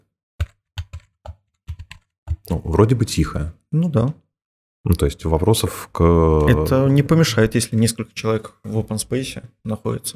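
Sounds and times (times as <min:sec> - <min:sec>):
typing on a demonstration computer keyboard: 0:00.4 - 0:02.6
speech: 0:02.5 - 0:04.2, 0:04.8 - 0:10.1.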